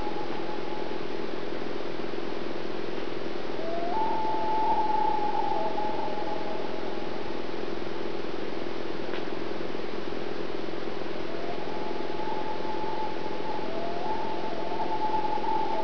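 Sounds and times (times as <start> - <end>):
steady humming noise: 0.0 - 15.8
loon wailing at Spruce Lake: 3.6 - 7.3, 11.2 - 15.8.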